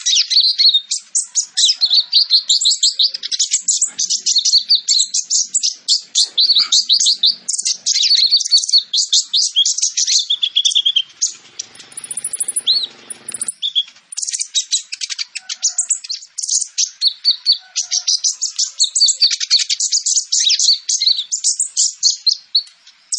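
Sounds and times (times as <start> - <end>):
sunbird twittering song: 0.0 - 23.1.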